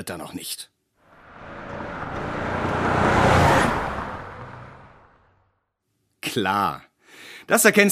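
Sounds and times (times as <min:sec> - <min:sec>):
speech: 0:00.0 - 0:00.7, 0:06.3 - 0:07.9
car engine and tire noise driving past: 0:01.1 - 0:05.6.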